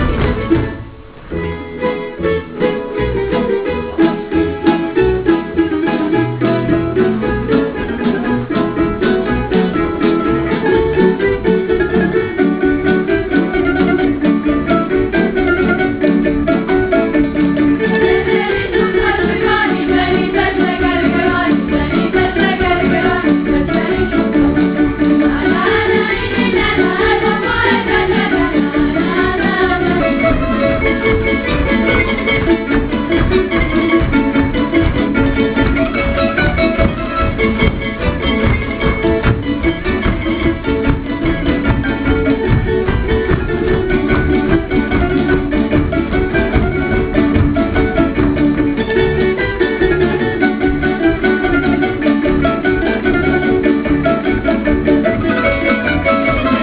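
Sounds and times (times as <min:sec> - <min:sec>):
guitar playing in Dubrovnik: 0:00.0 - 0:56.6
folk singers in Dubrovnik: 0:18.2 - 0:30.9.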